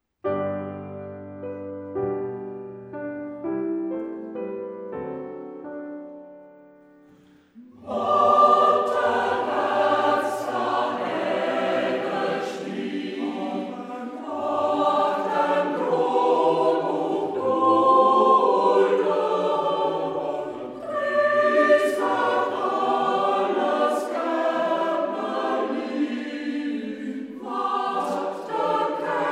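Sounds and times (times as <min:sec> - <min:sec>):
piano: 0:00.2 - 0:29.3
Transylvanian Saxon choir singing in the Hermannstadt dialect: 0:07.2 - 0:29.3.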